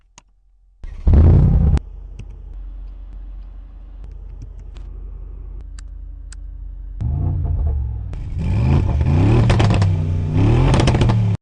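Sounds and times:
G Class exhaust: 0.9 - 11.3.

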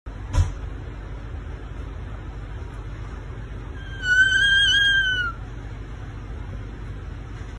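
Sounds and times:
kit fox: 3.8 - 5.4.

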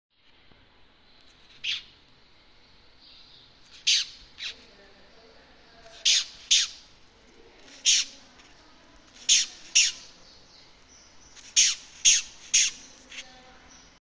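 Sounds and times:
Polyphylla olivieri white root grub beetle: 1.2 - 2.0, 3.1 - 4.7, 5.8 - 7.0, 7.6 - 13.9.

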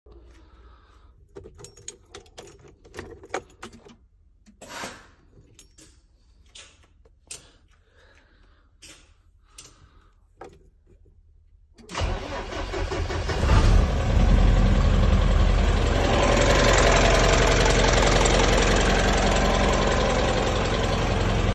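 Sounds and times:
Renault Midlum 270 truck: 11.9 - 21.5.

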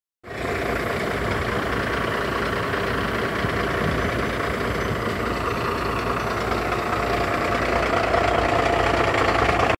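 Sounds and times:
Renault Midlum 270 truck engine: 0.2 - 9.7.

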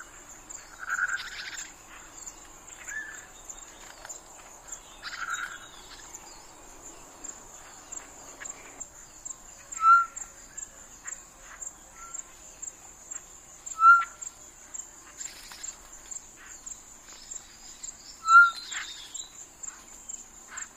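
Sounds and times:
high-pitched insect hum: 0.0 - 20.7
Short-tailed batis Batis mixta whistling: 9.8 - 10.3, 13.8 - 14.2, 18.2 - 19.1.

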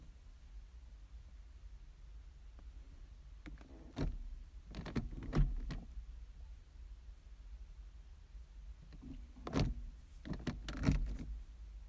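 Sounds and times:
car switch lever: 3.5 - 6.0, 8.9 - 11.4.

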